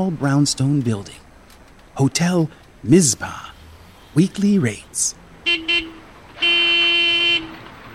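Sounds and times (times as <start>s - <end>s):
speech: 0.0s - 1.2s, 2.0s - 3.5s, 4.2s - 5.8s
faint traffic hum: 0.0s - 7.9s
car and truck horns honking: 5.4s - 7.9s.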